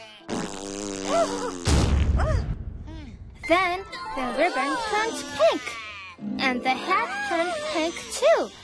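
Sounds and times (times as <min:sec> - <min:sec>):
cartoon fart sound effect: 0:00.3 - 0:01.9
speech: 0:01.2 - 0:02.5, 0:03.5 - 0:08.6.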